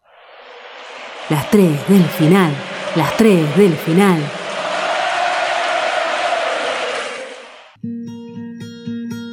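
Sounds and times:
football stadium crowd chanting and roaring: 0:01.0 - 0:07.8
speech: 0:01.3 - 0:04.4.

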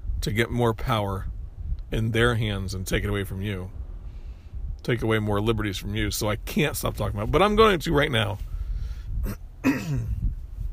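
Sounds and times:
speech: 0:00.2 - 0:01.3, 0:01.9 - 0:03.8, 0:04.8 - 0:08.5, 0:09.2 - 0:10.1
person coughing with dry hack and throaty cough: 0:09.2 - 0:10.2.

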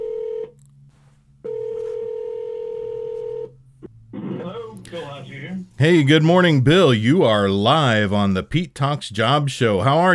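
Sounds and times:
ringback tone of an outgoing phone call: 0:00.0 - 0:00.5, 0:01.4 - 0:03.5
speech: 0:05.8 - 0:10.1.

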